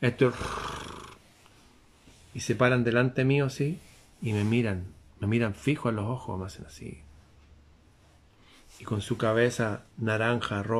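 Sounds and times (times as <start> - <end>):
speech: 0.0 - 0.6, 2.4 - 7.0, 8.8 - 10.7
voice imitating cat-like purring: 0.1 - 1.2.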